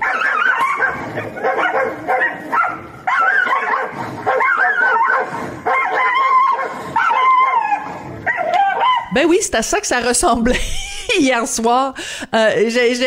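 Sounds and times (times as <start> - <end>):
several dogs yapping and barking: 0.0 - 9.2
speech: 9.2 - 13.0
laughter: 10.4 - 11.3.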